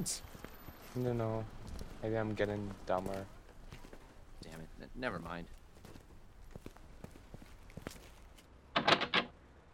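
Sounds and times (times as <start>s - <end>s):
speech: 0.0s - 0.4s, 1.0s - 3.4s, 4.4s - 5.6s
soft footsteps: 0.2s - 8.5s
locked door yanked and rattled: 8.8s - 9.3s.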